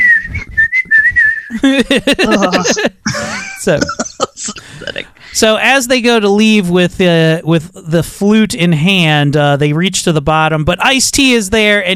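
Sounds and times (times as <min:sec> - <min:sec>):
person imitating whistling: 0:00.0 - 0:05.0
animated laugh-like vocal sounds: 0:01.5 - 0:05.6
speech: 0:01.6 - 0:11.9.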